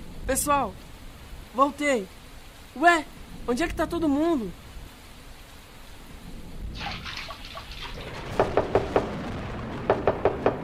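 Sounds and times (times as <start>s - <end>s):
steady hissing background: 0.0s - 10.6s
speech: 0.3s - 0.9s, 1.5s - 2.2s, 2.8s - 4.6s
firm crisp knocking on a door: 8.4s - 9.1s, 9.9s - 10.6s.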